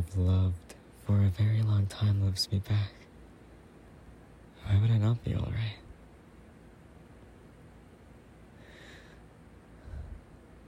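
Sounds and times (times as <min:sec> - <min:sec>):
speech: 0:00.2 - 0:03.0, 0:04.6 - 0:05.8
soft breathing: 0:08.5 - 0:10.6.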